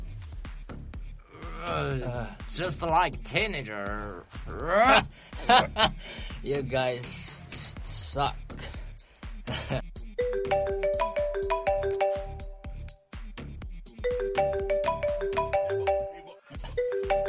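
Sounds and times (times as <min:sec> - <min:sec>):
speech: 0:01.6 - 0:07.4, 0:08.1 - 0:08.4, 0:09.7 - 0:09.9
mobile phone ringing in chest pocket: 0:10.2 - 0:12.7, 0:14.1 - 0:17.2.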